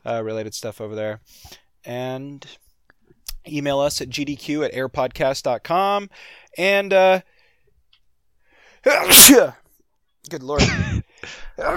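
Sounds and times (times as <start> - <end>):
speech: 0.0 - 2.6, 3.4 - 7.3, 8.8 - 9.6, 10.2 - 11.7
person sneezing: 8.9 - 9.6, 10.6 - 11.7.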